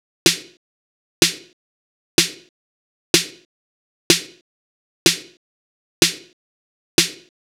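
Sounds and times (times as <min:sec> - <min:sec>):
snare drum loop: 0:00.3 - 0:00.6, 0:01.2 - 0:01.5, 0:02.2 - 0:02.5, 0:03.2 - 0:03.4, 0:04.1 - 0:04.4, 0:05.1 - 0:05.4, 0:06.0 - 0:06.3, 0:07.0 - 0:07.3.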